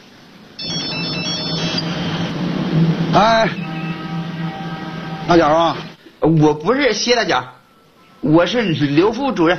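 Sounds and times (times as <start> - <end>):
telephone ringtone after a call is placed: 0.6 - 2.3
speech: 3.1 - 3.7, 5.3 - 7.5, 8.2 - 9.5.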